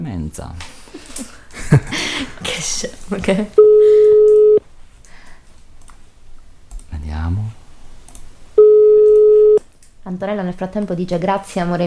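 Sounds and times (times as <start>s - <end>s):
faint low noise: 0.0s - 11.8s
speech: 0.3s - 4.2s, 10.1s - 11.8s
telephone ringing on an unanswered call: 3.6s - 4.6s, 8.6s - 9.6s.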